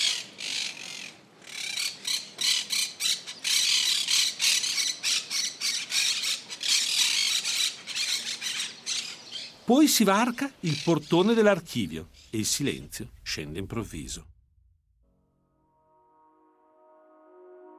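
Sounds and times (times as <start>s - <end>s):
flock of parrots squawking in palm trees: 0.0s - 9.6s
speech: 9.7s - 14.4s.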